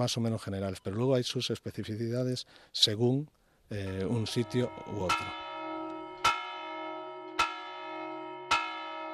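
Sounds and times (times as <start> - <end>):
speech: 0.0 - 5.4
church bell tolling: 3.8 - 9.1.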